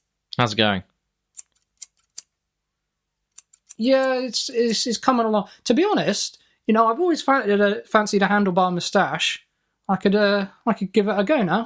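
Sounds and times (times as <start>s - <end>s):
speech: 0.4s - 0.9s, 3.8s - 11.6s
scissors snipping hair: 1.4s - 2.3s, 3.4s - 4.1s.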